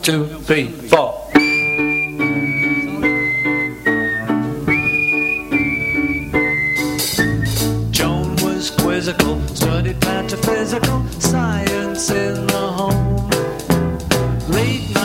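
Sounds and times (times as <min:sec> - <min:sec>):
speech: 0:00.0 - 0:01.4
whistled melody: 0:01.3 - 0:08.6
full band backing of piano, bass and drums: 0:01.4 - 0:15.0.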